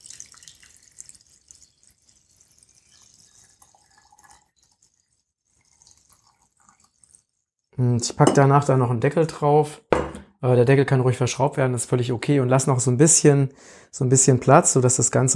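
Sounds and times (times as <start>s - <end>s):
water pouring into a container: 0.0s - 7.8s
speech: 7.8s - 9.8s, 10.4s - 15.3s.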